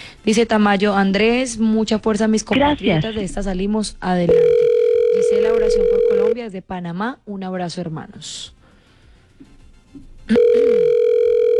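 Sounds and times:
speech: 0.2s - 8.6s, 10.3s - 11.0s
telephone line tone on a call going through to an answering service: 4.3s - 6.4s, 10.3s - 11.5s.

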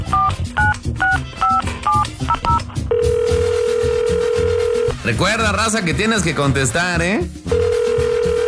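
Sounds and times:
telephone keypad tones beeping: 0.1s - 3.4s
loud steady tone of a telephone line ringing out: 2.9s - 5.0s, 7.5s - 8.4s
speech: 5.1s - 7.4s.

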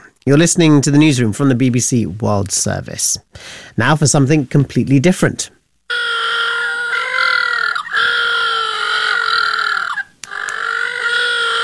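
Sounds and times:
speech: 0.2s - 5.6s
little blue penguins calling: 5.9s - 11.6s.

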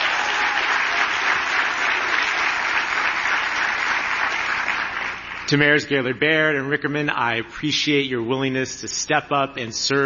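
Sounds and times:
large audience applauding at a gathering of a mayors' organization: 0.0s - 5.5s
speech: 5.5s - 10.0s.

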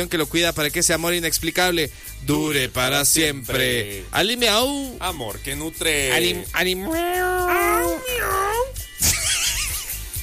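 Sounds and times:
speech: 0.0s - 8.4s
raspy cat meowing: 6.8s - 8.7s.

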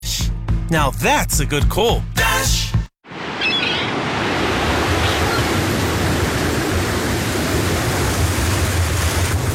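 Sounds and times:
speech: 0.7s - 2.6s
rough water churning: 3.1s - 9.5s
winter wind roaring: 3.1s - 9.5s.

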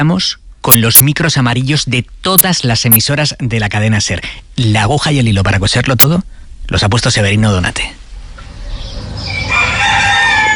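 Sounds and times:
speech: 0.0s - 8.0s
roosters crowing behind farmyard walls in Cantabria: 8.7s - 10.5s.

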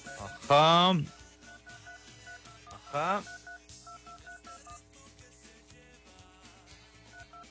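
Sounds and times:
touch-tone keypad beeps as a phone number is dialed: 0.0s - 4.8s, 7.1s - 7.4s
speech: 0.5s - 1.2s, 2.9s - 3.4s.

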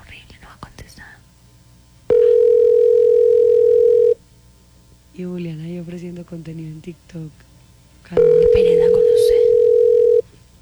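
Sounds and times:
faint hum: 0.0s - 10.6s
telephone dial tone while a number is dialed: 2.1s - 4.2s, 8.2s - 10.3s
speech: 5.2s - 7.5s, 8.1s - 9.4s.

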